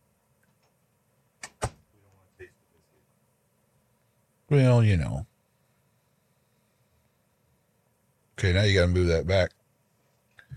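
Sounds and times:
door being pushed shut with click and heavy thud: 1.4 - 1.8
speech: 4.5 - 5.3, 8.4 - 9.6.

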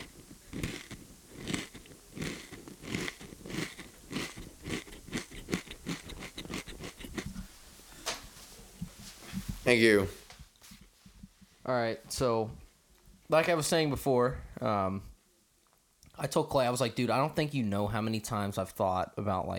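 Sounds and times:
crunching on goldfish crackers: 0.0 - 7.5
speech: 9.7 - 10.2, 11.7 - 12.6, 13.3 - 15.1, 16.2 - 19.5.

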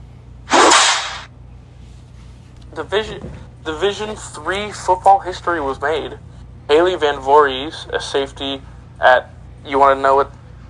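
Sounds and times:
whip crack sound effect with short hissing tail: 0.5 - 1.3
speech: 2.8 - 10.4.

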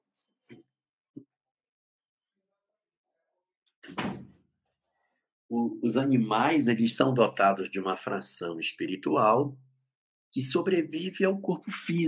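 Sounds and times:
door pushed shut with a solid thump: 3.8 - 4.4
speech: 5.7 - 9.6, 10.3 - 12.0.

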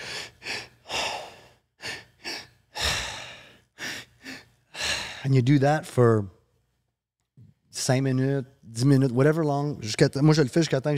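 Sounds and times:
rapid forceful hyperventilation breathing demonstration: 0.0 - 5.4
speech: 5.2 - 6.4, 7.9 - 10.9.

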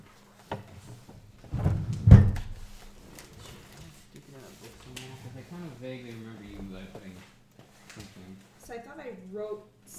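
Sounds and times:
drawer knocking open: 1.5 - 2.7
heavier thunk: 1.6 - 2.7.

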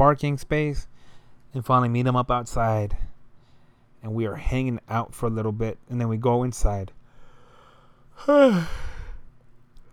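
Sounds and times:
speech: 0.0 - 0.9, 1.5 - 3.1, 4.0 - 7.0, 8.2 - 8.9
person lying down yawning: 8.2 - 9.2.

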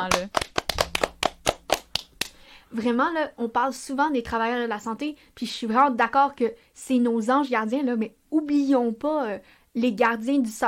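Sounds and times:
speech: 0.0 - 0.5, 2.7 - 10.6
hands clapping in applause for teachers: 0.0 - 2.4.

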